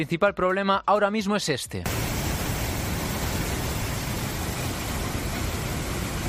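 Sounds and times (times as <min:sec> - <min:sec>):
speech: 0:00.0 - 0:02.2
river water rushing down with great force after storm rains: 0:01.9 - 0:06.2.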